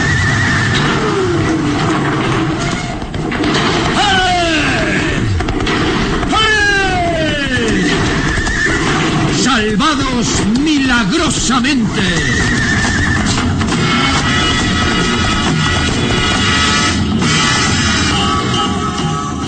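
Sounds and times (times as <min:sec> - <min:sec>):
horses pulling a cart neighing with quavering whinnies: 0:00.0 - 0:16.6
bridge over an abyss collapsing with crashing rumbling roar: 0:00.0 - 0:18.4
speech: 0:11.1 - 0:12.6.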